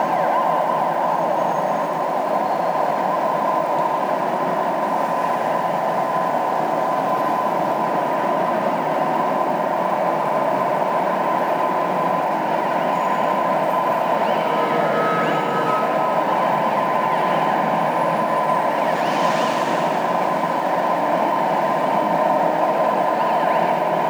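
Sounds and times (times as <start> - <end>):
police car in a city: 0.0 - 24.0.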